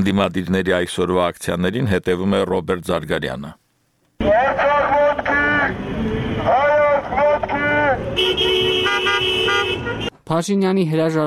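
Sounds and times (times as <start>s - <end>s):
speech: 0.0s - 3.6s, 10.3s - 11.2s
car horns honking in a slow-moving protest motorcade in a capital city's streets: 4.2s - 10.2s.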